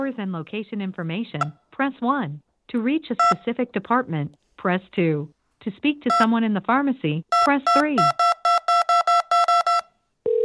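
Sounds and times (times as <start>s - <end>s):
speech: 0.1s - 8.2s
cell phone keypad number tones: 7.4s - 10.4s.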